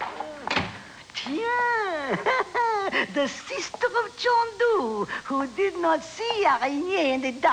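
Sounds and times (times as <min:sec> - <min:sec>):
door swinging shut quickly: 0:00.0 - 0:01.0
speech: 0:01.2 - 0:07.5.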